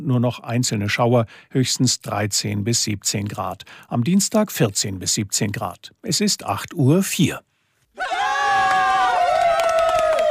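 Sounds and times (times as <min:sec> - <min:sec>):
speech: 0:00.1 - 0:08.3
loud crowd cheering and yelling in high-pitched voices: 0:08.0 - 0:10.3
scattered clapping applauding volunteers: 0:08.6 - 0:10.3.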